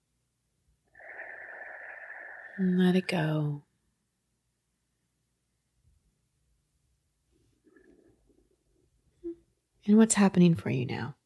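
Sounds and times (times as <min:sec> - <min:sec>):
long steady inhale through the nose: 0:00.9 - 0:02.8
speech: 0:02.6 - 0:03.6, 0:09.9 - 0:11.2.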